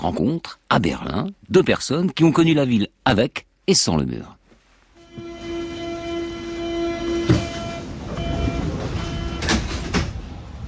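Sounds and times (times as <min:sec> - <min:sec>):
speech: 0:00.0 - 0:04.4
metro train high tonal whine: 0:05.0 - 0:09.8
metro train rumbling on rails in Berlin on a grey rainy day: 0:05.0 - 0:10.6.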